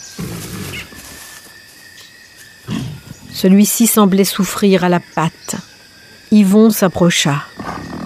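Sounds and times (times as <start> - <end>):
tiger growling: 0.0 - 1.2, 2.6 - 3.5, 7.4 - 8.0
high buzzing jungle ambience: 0.0 - 8.0
speech: 3.4 - 5.7, 6.3 - 7.7.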